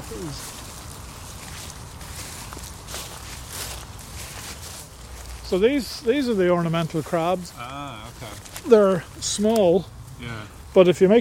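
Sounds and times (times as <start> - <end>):
footsteps walking through a park: 0.0 - 9.8
constant outdoor hiss in a park: 0.0 - 11.1
speech: 0.1 - 0.6, 5.5 - 11.1.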